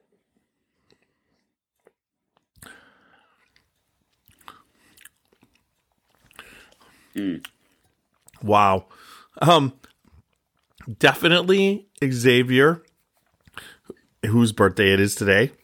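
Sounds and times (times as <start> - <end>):
person sipping a drink with wet slurps: 0.1 - 10.9, 13.2 - 14.2
speech: 7.2 - 7.6, 8.4 - 9.9, 10.9 - 12.9, 13.6 - 15.6.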